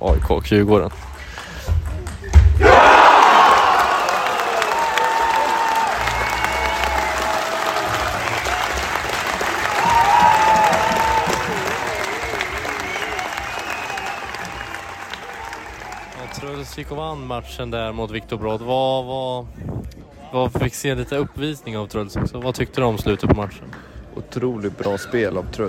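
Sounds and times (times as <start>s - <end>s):
speech: 0.0s - 1.1s, 16.8s - 19.6s, 20.3s - 25.6s
large crowd applauding and cheering: 2.6s - 16.9s.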